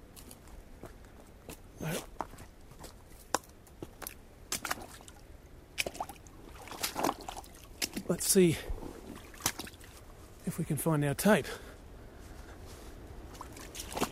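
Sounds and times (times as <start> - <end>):
creek water trickling after a month without rain: 2.0 - 10.7, 13.2 - 14.0
soft splashes and clicks: 3.2 - 5.2, 5.8 - 8.1, 9.0 - 10.0, 13.3 - 14.0
speech: 8.1 - 8.7, 10.6 - 11.7.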